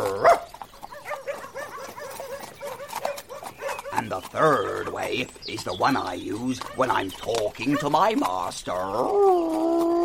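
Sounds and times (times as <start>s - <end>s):
dog barking: 0.0s - 4.0s
speech: 4.3s - 10.0s.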